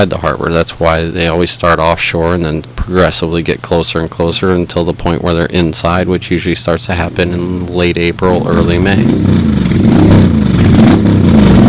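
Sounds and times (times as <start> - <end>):
speech: 0.0 - 9.9
motorcycle engine revving: 7.0 - 11.6.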